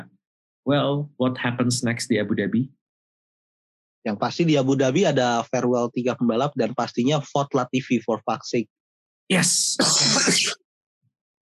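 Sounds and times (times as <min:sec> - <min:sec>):
speech: 0:00.0 - 0:02.8, 0:04.0 - 0:10.6
person coughing: 0:09.8 - 0:10.6.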